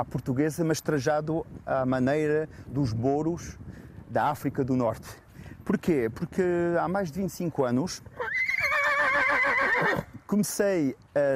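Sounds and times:
speech: 0:00.0 - 0:08.3, 0:10.3 - 0:11.3
Lusitano horse whinnying: 0:08.2 - 0:10.2.

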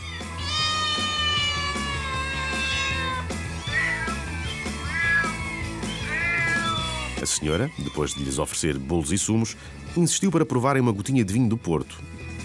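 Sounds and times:
many cats meowing loudly in an elderly woman's house: 0:00.0 - 0:08.4
speech: 0:07.4 - 0:12.2.

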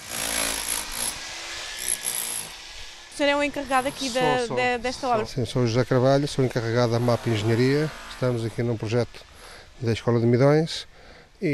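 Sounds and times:
pneumatic hammer chipping at wall plaster: 0:00.0 - 0:02.5
speech: 0:03.2 - 0:11.5.

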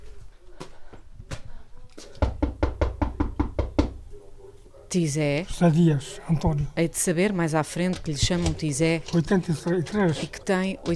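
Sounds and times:
knocking on a house door: 0:02.2 - 0:04.0
speech: 0:04.9 - 0:10.9.

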